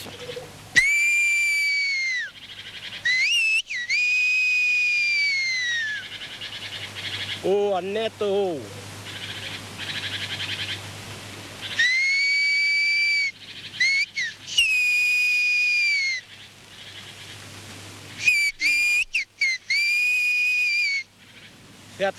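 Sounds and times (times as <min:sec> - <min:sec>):
faint outdoor background: 0:00.0 - 0:22.1
whistled language message from the Ossau valley: 0:00.8 - 0:02.4, 0:03.0 - 0:06.0, 0:11.8 - 0:16.2, 0:18.2 - 0:21.1
speech: 0:07.4 - 0:08.8.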